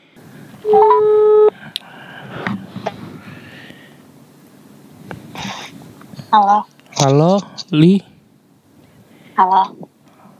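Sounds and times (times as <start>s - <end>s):
speech: 0.6s - 1.1s, 6.3s - 8.1s, 9.4s - 9.9s
telephone ringback tone while placing a call: 0.6s - 1.5s.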